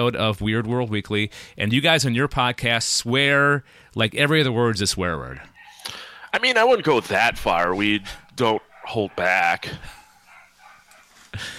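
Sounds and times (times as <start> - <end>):
speech: 0.0 - 10.0
dog barking: 7.5 - 11.3.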